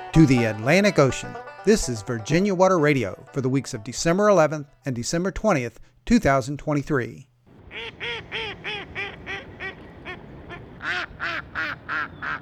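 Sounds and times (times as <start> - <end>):
mallard ducks quacking at a duck pond in Blacksburg, Virginia, in December: 0.0 - 4.5, 7.6 - 12.4
speech: 0.2 - 8.4.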